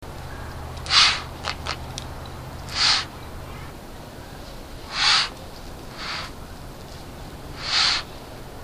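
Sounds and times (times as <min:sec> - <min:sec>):
snowy owl: 0:00.3 - 0:01.3, 0:02.7 - 0:03.1, 0:04.8 - 0:06.4, 0:07.6 - 0:08.2.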